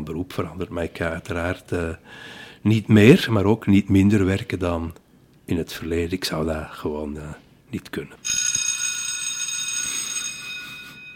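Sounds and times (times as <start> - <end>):
speech: 0.1 - 8.4
school bell ringing: 8.2 - 11.1.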